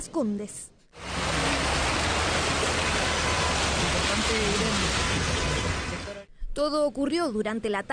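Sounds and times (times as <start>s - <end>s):
speech: 0.2s - 0.8s, 4.3s - 5.3s, 6.6s - 7.9s
rushing floodwater carrying mud and rocks: 1.0s - 6.2s.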